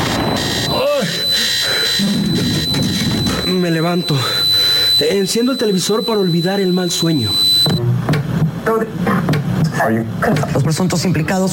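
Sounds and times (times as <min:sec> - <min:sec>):
electronic alarm clock buzzing with a thin high-pitched tone: 0:00.0 - 0:07.8
speech: 0:03.9 - 0:04.4, 0:05.0 - 0:07.8, 0:08.7 - 0:11.5.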